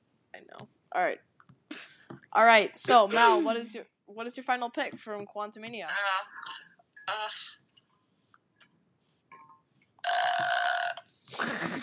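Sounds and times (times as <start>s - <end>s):
speech: 1.0s - 1.3s, 2.3s - 7.6s
person burping: 6.4s - 7.6s, 10.0s - 11.8s.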